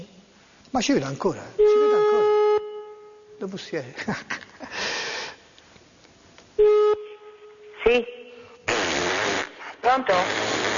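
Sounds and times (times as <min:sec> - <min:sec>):
speech: 0:00.7 - 0:02.3, 0:03.4 - 0:05.1, 0:10.0 - 0:10.5
person blowing their nose: 0:08.7 - 0:10.7.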